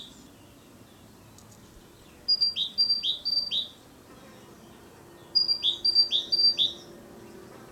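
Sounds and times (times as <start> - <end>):
great tit territorial song: 0.0 - 7.7.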